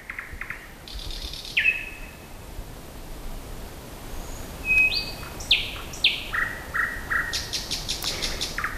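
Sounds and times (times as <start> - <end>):
nightingale singing at night: 0.0 - 2.4, 4.2 - 8.7
quiet hissy background: 0.0 - 8.7.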